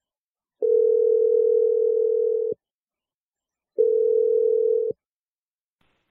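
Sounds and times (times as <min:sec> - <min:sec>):
telephone ringing tones: 0:00.6 - 0:02.6, 0:03.8 - 0:05.0.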